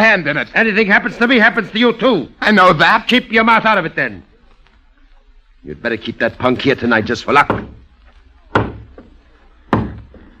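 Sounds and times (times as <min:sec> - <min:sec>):
speech: 0:00.0 - 0:04.3, 0:05.6 - 0:07.8
heavy resonant knocking on a door: 0:07.4 - 0:07.8, 0:08.5 - 0:09.1, 0:09.7 - 0:10.1.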